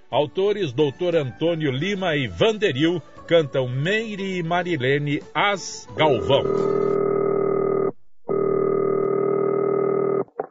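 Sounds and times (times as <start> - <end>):
speech: 0.1 - 7.0
telephone dial tone: 6.2 - 10.4.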